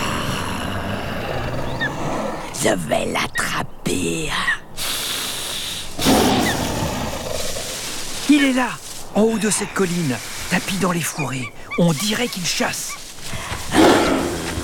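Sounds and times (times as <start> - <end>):
sabre-toothed tiger roaring: 0.0 - 2.6, 6.0 - 7.9, 13.7 - 14.6
sabre-toothed tiger snarling: 0.0 - 2.6, 5.9 - 8.3, 13.0 - 14.6
steady wash of ambient noise: 0.0 - 14.6
speech: 2.6 - 4.6, 8.3 - 13.0.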